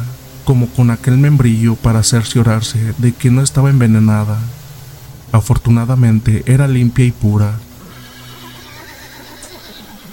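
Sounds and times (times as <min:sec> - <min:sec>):
steady hum: 0:00.0 - 0:10.1
speech: 0:00.5 - 0:04.6, 0:05.3 - 0:07.6
horse whinnying in agitation: 0:07.8 - 0:10.1.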